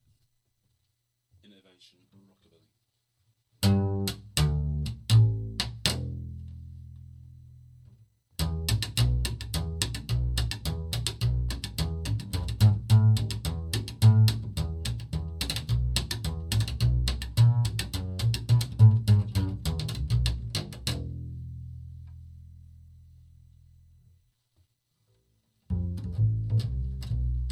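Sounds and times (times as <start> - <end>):
rockabilly music: 3.6 - 7.1, 8.4 - 22.0, 25.7 - 27.5.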